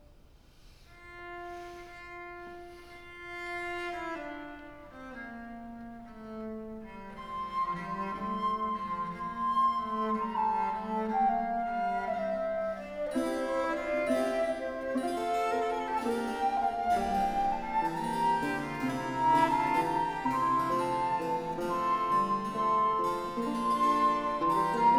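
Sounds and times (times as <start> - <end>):
ensemble playing: 6.7 - 24.9.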